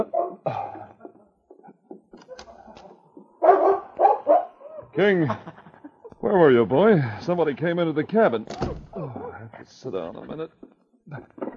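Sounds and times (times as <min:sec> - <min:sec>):
dog barking: 0:00.0 - 0:00.5, 0:03.4 - 0:04.9
laughter: 0:04.9 - 0:07.5
speech: 0:05.0 - 0:05.5, 0:06.2 - 0:08.9, 0:09.8 - 0:11.4.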